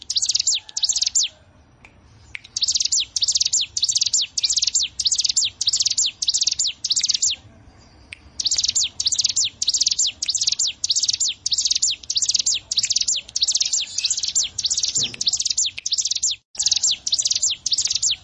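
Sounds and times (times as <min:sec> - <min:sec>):
prinia song of rapid high downslurred chips: 0:00.0 - 0:18.2.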